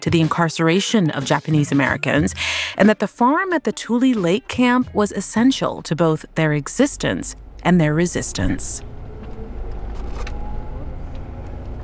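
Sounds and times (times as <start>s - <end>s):
speech: 0.0s - 8.9s
bus engine rumble inside a moving bus: 3.5s - 11.8s
road noise inside a moving bus: 4.2s - 11.8s.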